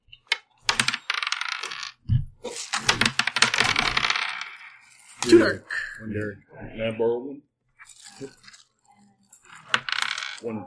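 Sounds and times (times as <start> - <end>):
dice tossed during a tabletop game: 0.1 - 5.6, 7.8 - 8.7, 9.3 - 10.6
speech: 5.2 - 7.5, 8.2 - 8.5, 10.4 - 10.6.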